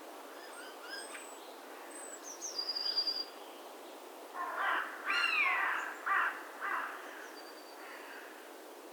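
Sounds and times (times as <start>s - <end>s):
carrion crow Corvus corone giving harsh hoarse caws: 4.4s - 7.2s, 7.8s - 8.4s.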